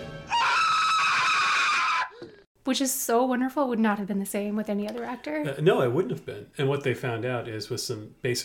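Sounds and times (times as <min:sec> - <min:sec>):
man screaming in terror: 0:00.3 - 0:02.4
speech: 0:02.7 - 0:08.4.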